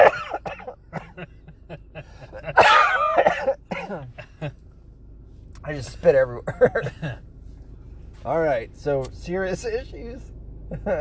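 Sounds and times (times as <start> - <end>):
people coughing while trying to smoke: 0.0 - 1.4, 2.3 - 4.5
laughter: 0.0 - 2.8, 10.7 - 10.9
speech: 6.0 - 7.2, 8.2 - 10.9.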